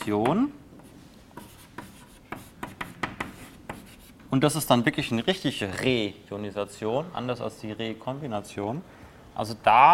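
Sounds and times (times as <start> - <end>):
speech: 0.0 - 0.6, 4.3 - 9.9
scratchy writing strokes on a surface while taking notes: 0.8 - 4.3.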